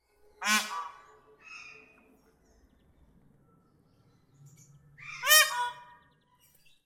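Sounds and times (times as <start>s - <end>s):
blue peafowl Pavo cristatus colour variants calling: 0.4s - 1.9s, 5.0s - 6.1s.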